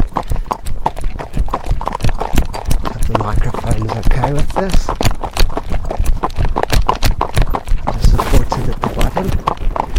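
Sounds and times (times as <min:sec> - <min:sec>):
horse trotting with hooves clip-clopping: 0:00.0 - 0:09.9.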